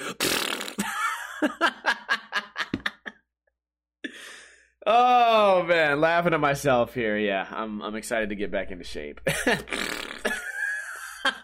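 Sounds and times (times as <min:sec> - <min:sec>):
person imitating a fart with their mouth: 0:00.0 - 0:00.9, 0:09.6 - 0:10.4
laughter: 0:00.8 - 0:03.2, 0:09.3 - 0:11.4
speech: 0:01.4 - 0:02.0, 0:04.9 - 0:10.0.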